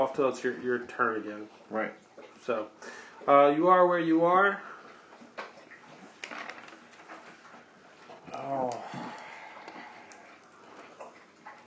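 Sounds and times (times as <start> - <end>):
speech: 0.0 - 4.7
steady hiss: 0.0 - 11.6
dog lapping water from bowl: 1.3 - 3.5, 4.6 - 6.2, 6.8 - 11.6.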